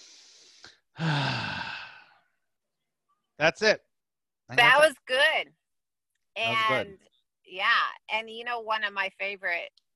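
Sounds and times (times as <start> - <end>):
deep breath in and out: 0.0 - 2.5
speech: 3.4 - 3.9, 4.5 - 5.6, 6.4 - 9.8.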